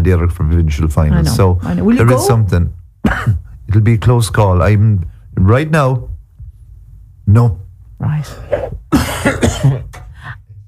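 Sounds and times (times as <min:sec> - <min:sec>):
speech: 0:00.0 - 0:06.1, 0:07.3 - 0:10.0
person with a tickly cough coughing: 0:03.0 - 0:03.5, 0:08.6 - 0:10.1.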